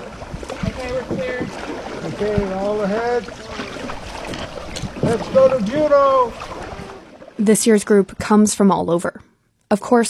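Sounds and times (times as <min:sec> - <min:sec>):
wind noise: 0:00.0 - 0:02.6, 0:03.6 - 0:07.1
canoe paddles swishing and splashing in open water: 0:00.0 - 0:08.4
canoe crew talking and calling out: 0:00.6 - 0:09.2
speech: 0:00.8 - 0:03.6, 0:05.1 - 0:06.5, 0:07.4 - 0:10.0.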